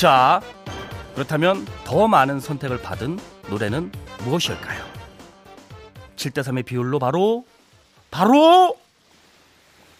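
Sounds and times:
speech: 0:00.0 - 0:00.6, 0:01.2 - 0:05.0, 0:06.2 - 0:07.5, 0:08.1 - 0:08.8
ocean waves washing in: 0:07.2 - 0:09.9.

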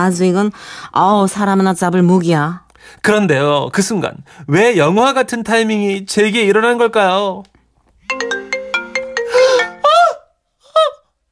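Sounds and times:
speech: 0:00.0 - 0:07.5
mobile phone ringtone ringing loudly: 0:08.1 - 0:10.0
voice letting out short startled exclamations: 0:09.8 - 0:11.0.

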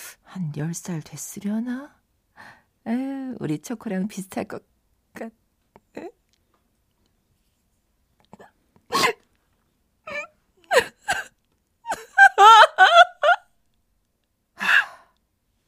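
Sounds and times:
speech: 0:00.4 - 0:02.0, 0:02.8 - 0:05.4, 0:06.0 - 0:06.2
person bursting into tears sobbing in a small café: 0:10.1 - 0:11.3, 0:11.9 - 0:13.5.

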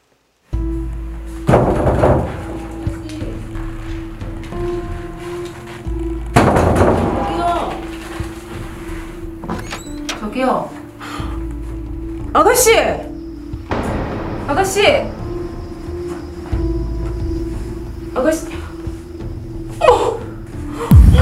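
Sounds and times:
low musical drone: 0:00.6 - 0:21.2
knocking on a door: 0:01.5 - 0:02.6
speech: 0:12.4 - 0:13.0, 0:14.6 - 0:15.2, 0:18.2 - 0:18.5.

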